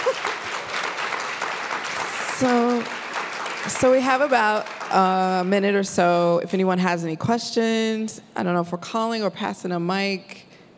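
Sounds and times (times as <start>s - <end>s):
audience applause: 0.0s - 5.4s
speech: 2.4s - 3.0s, 3.7s - 10.4s.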